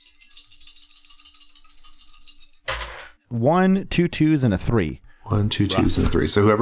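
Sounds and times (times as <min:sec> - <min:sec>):
dice rattling in a hand or cup: 0:00.0 - 0:03.2
dice tumbling onto a table: 0:02.7 - 0:03.1
speech: 0:03.3 - 0:06.6.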